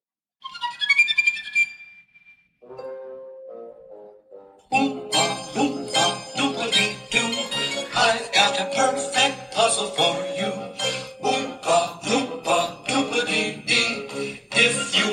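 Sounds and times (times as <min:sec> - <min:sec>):
film soundtrack song played by smart speaker: 0:04.7 - 0:15.1.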